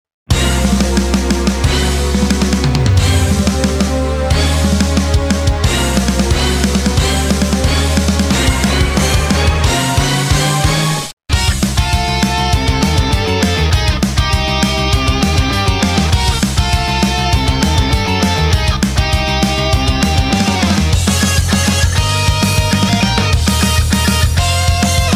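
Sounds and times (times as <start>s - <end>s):
boss battle background music lead melody: 0.3s - 25.1s.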